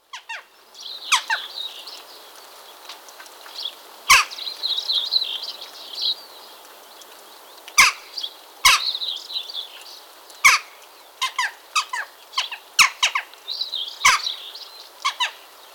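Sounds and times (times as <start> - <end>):
Western jackdaw uttering clipped metallic chak calls: 1.1 - 1.6, 4.1 - 4.5, 7.8 - 8.1, 8.7 - 9.0, 10.4 - 13.3, 14.0 - 14.4, 15.0 - 15.4.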